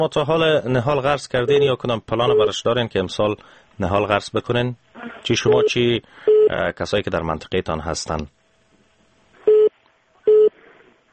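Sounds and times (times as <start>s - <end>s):
speech: 0.0s - 8.4s
telephone busy tone after phone call disconnects: 9.5s - 9.7s, 10.3s - 10.5s.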